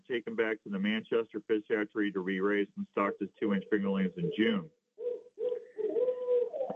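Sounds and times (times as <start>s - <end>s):
speech: 0.1s - 6.0s
owl hooting: 3.0s - 6.7s.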